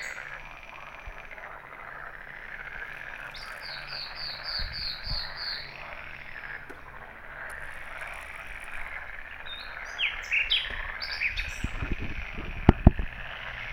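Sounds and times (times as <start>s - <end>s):
common nightingale Luscinia megarhynchos singing: 0.0s - 1.2s, 2.8s - 12.4s
steady croaking frog chorus: 0.0s - 13.7s.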